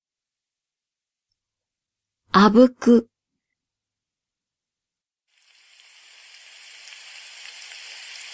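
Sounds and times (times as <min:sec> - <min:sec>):
speech: 0:02.4 - 0:03.1
steady rain falling: 0:05.3 - 0:08.3.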